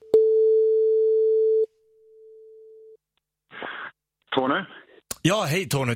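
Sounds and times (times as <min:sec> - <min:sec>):
telephone ringback tone of an outgoing survey call: 0:00.2 - 0:01.7
speech: 0:04.4 - 0:05.9.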